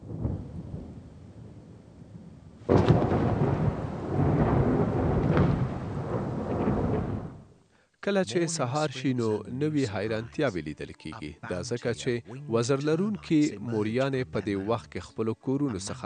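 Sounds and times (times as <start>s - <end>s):
thunder rumbling at night: 0.0s - 7.6s
rain hiss at night: 0.0s - 10.0s
speech: 8.0s - 16.0s.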